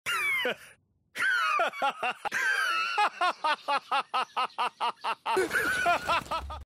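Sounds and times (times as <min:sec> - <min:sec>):
wheezing laugh: 0:01.3 - 0:06.6.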